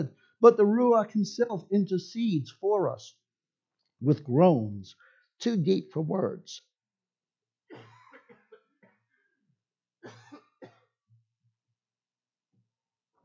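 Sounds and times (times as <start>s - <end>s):
speech: 0.0s - 3.2s, 4.0s - 6.7s
person coughing hard: 7.7s - 9.0s, 10.0s - 10.8s.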